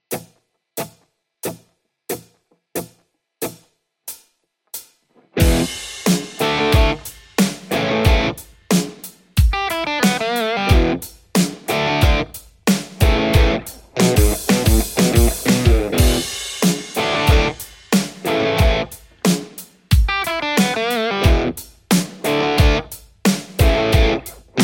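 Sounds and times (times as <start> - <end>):
Les Paul electric guitar: 5.2 - 8.4, 9.5 - 19.1, 20.1 - 21.6, 22.2 - 22.9, 23.6 - 24.6.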